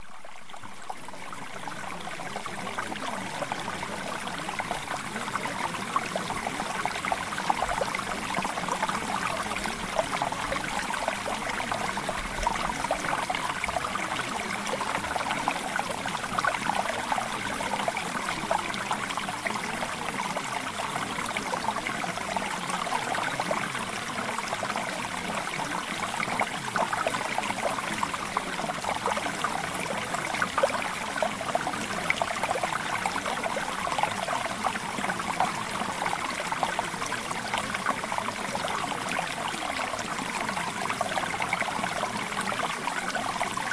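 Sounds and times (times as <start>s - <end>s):
mountain stream flowing: 0.0s - 43.7s.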